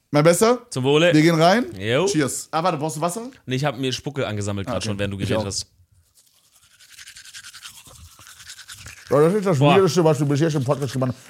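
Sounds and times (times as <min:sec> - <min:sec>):
speech: 0:00.1 - 0:05.8, 0:09.1 - 0:11.2
teeth being brushed with a firm-bristled toothbrush: 0:06.0 - 0:11.2.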